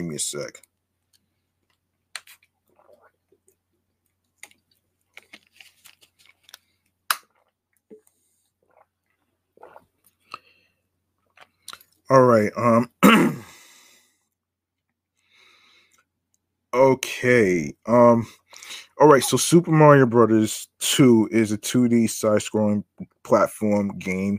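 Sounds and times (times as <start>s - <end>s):
speech: 0.0s - 0.7s, 12.1s - 13.4s, 16.7s - 24.3s
sipping water with slurps and swallows: 1.2s - 5.5s, 6.3s - 12.1s, 18.0s - 20.0s.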